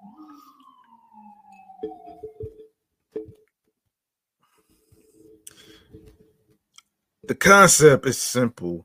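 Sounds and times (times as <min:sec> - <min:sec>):
emergency vehicle siren wailing outside as the vehicle passes: 0:00.0 - 0:03.4
speech: 0:07.3 - 0:08.8.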